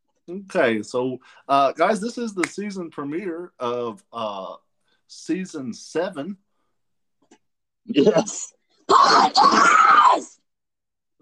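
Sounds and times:
speech: 0:00.3 - 0:06.4, 0:07.9 - 0:10.4
loud excited scream: 0:08.9 - 0:10.4.

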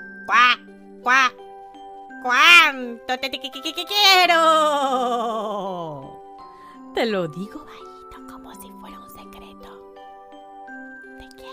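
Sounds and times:
speech: 0:00.3 - 0:01.4, 0:02.8 - 0:06.2, 0:07.0 - 0:07.9
voice imitating duck quacks: 0:00.3 - 0:01.4, 0:02.2 - 0:04.2.

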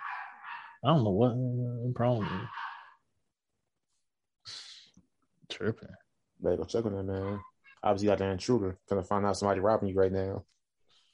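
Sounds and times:
faint dog barking: 0:00.0 - 0:03.0, 0:07.1 - 0:07.5
speech: 0:00.8 - 0:02.6, 0:05.6 - 0:10.5.

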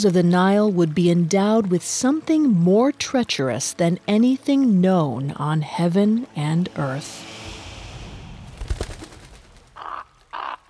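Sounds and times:
speech: 0:00.0 - 0:07.3
rough crackling flutter-like noise: 0:07.5 - 0:10.5
giant ibis calling above the Nile: 0:09.8 - 0:10.6.

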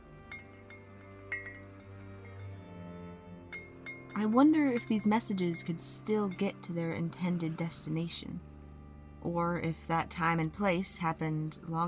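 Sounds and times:
low steady hum: 0:00.0 - 0:11.8
glass bottles chiming and clinking against each other: 0:00.2 - 0:06.7
speech: 0:04.2 - 0:08.5, 0:09.2 - 0:11.8.

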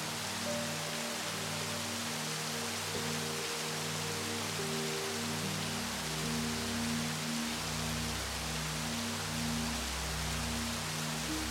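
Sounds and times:
gentle relaxing melody of low sustained tones: 0:00.0 - 0:11.4
soft steady rain: 0:00.0 - 0:11.4.

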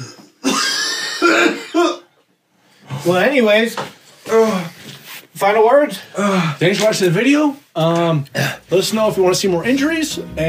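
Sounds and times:
person coughing after a drink went down the wrong way: 0:00.0 - 0:02.1
speech: 0:03.0 - 0:04.7, 0:05.4 - 0:10.4.

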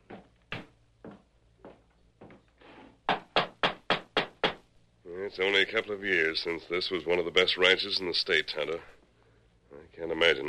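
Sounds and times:
knocking on the wooden door of a ranch house: 0:03.1 - 0:04.6
speech: 0:05.3 - 0:09.0, 0:10.1 - 0:10.4.

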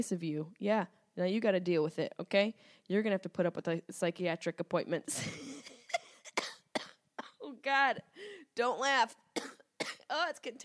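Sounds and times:
speech: 0:00.0 - 0:05.6, 0:07.6 - 0:09.5, 0:10.1 - 0:10.6
dry coughing: 0:05.6 - 0:07.4, 0:09.4 - 0:10.1.

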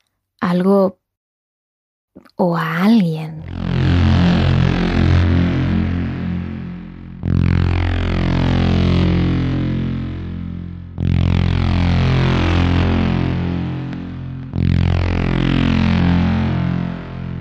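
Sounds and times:
speech: 0:00.4 - 0:01.0, 0:02.2 - 0:03.6
car engine accelerating hard through gear shifts at night: 0:03.5 - 0:17.4.

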